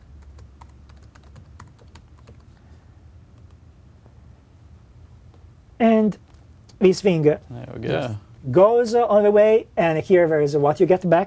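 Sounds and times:
typing on a computer keyboard during an authentication demo: 0.0s - 2.5s
speech: 5.8s - 6.2s, 6.8s - 11.2s.

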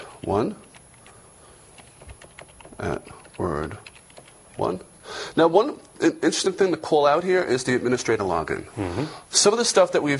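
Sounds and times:
speech: 0.2s - 0.7s, 2.8s - 3.9s, 4.6s - 10.1s
computer keyboard typing an administrator login and password: 0.2s - 4.8s
short voiced sounds: 8.7s - 9.2s.

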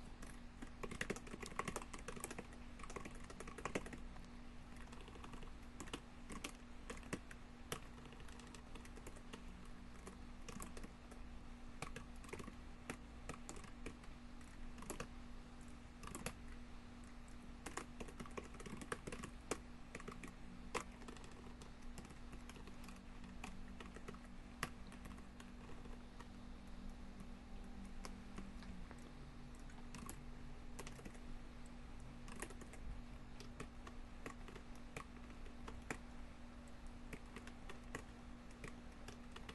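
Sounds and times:
typing on a computer keyboard: 0.0s - 4.1s, 4.7s - 15.2s, 16.0s - 16.6s, 17.4s - 31.3s, 32.0s - 39.5s
faint constant hum: 0.0s - 39.5s.

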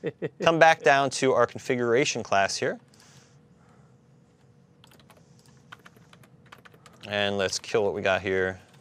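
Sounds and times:
speech: 0.0s - 2.9s, 7.1s - 8.6s
soft hum: 0.0s - 8.7s
rapid typing on a computer keyboard: 4.8s - 7.6s.

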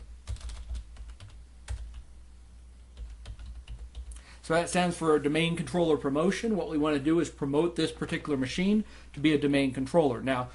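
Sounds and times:
typing a command at a command prompt on a computer keyboard: 0.2s - 2.1s, 2.9s - 4.2s
speech: 4.4s - 10.5s.

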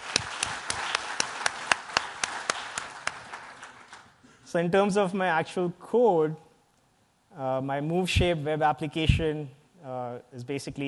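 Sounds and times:
sharp evenly spaced claps: 0.0s - 4.1s
small audience applause: 0.0s - 4.1s
speech: 4.5s - 6.5s, 7.4s - 10.8s.

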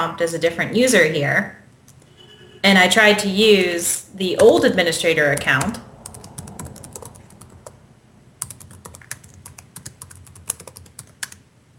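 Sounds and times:
speech: 0.0s - 1.6s, 2.6s - 5.9s
rapid typing on a computer keyboard: 8.4s - 11.4s.

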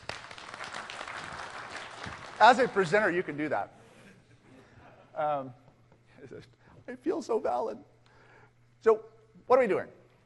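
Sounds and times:
crowd applause for a presenter giving a talk: 0.0s - 3.4s
speech: 2.4s - 3.8s, 5.2s - 5.6s, 6.2s - 7.9s, 8.8s - 10.0s.

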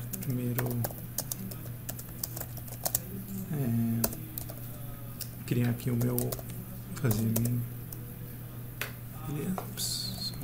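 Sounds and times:
low steady hum: 0.0s - 10.4s
fingers typing on a computer keyboard: 0.1s - 3.0s, 5.6s - 6.5s
speech: 0.3s - 1.1s, 5.5s - 7.8s, 9.3s - 10.0s.

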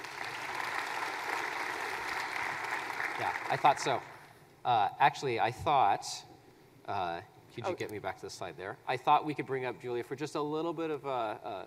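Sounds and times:
audience applause at a presentation: 0.0s - 4.2s
speech: 3.2s - 6.3s, 6.9s - 11.6s.

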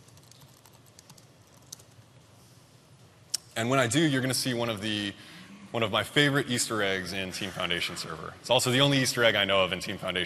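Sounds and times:
typing a username and password on a computer keyboard: 0.0s - 2.0s
speech: 3.6s - 10.2s.

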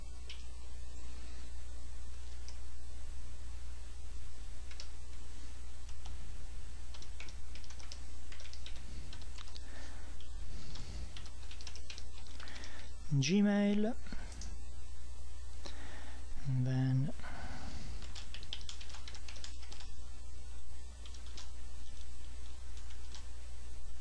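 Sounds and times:
steady low hum: 0.0s - 23.9s
name typed on a computer keyboard: 4.7s - 4.9s, 6.9s - 9.6s, 11.1s - 12.9s, 18.0s - 19.9s, 21.0s - 22.1s, 22.7s - 23.3s
speech: 13.1s - 14.2s, 16.6s - 17.2s.

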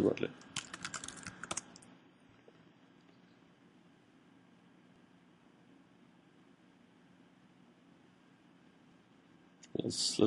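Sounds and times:
speech: 0.0s - 0.5s, 9.7s - 10.2s
typing a password on a computer keyboard: 0.4s - 1.9s.

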